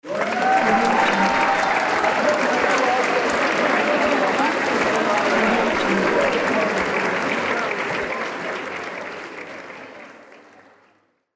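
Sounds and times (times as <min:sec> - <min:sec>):
audience cheering: 0:00.0 - 0:08.7.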